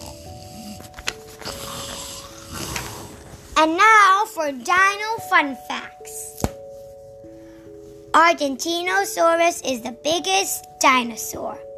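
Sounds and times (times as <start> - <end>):
snoring: 0.0 - 3.6
speech: 3.6 - 6.2, 8.2 - 11.7.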